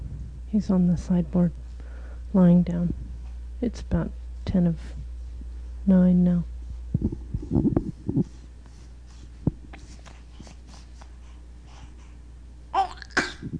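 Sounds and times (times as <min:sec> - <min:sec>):
speech: 0:00.5 - 0:01.6, 0:02.3 - 0:03.0, 0:03.6 - 0:05.0, 0:05.8 - 0:08.3
small sharp sneeze: 0:12.9 - 0:13.5.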